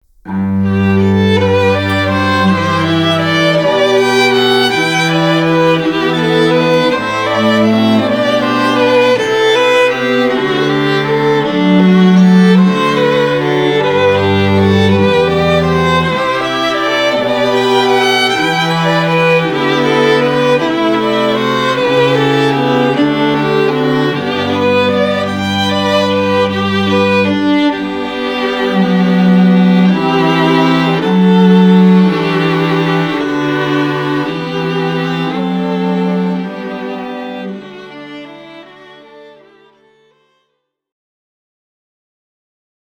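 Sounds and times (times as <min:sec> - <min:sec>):
classical quartet: 0:00.3 - 0:40.5.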